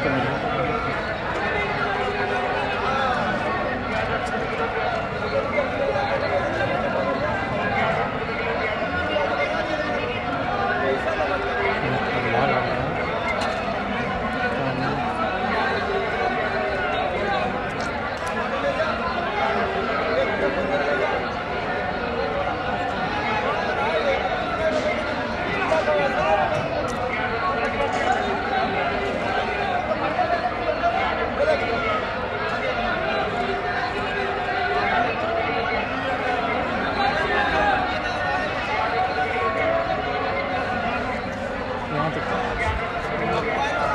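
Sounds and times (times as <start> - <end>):
overlapping voices and chatter on a busy evening street: 0.0 - 43.9
vendors advertising prices through small mics: 0.0 - 43.9.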